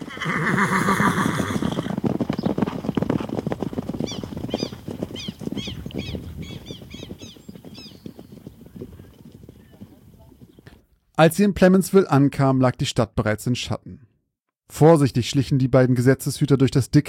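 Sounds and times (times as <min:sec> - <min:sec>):
horse whinnying as riders mount up: 0:00.0 - 0:02.6, 0:03.9 - 0:08.0
horse hooves clip-clopping: 0:00.0 - 0:11.0
speech: 0:00.2 - 0:01.0, 0:11.2 - 0:14.0, 0:14.7 - 0:17.0.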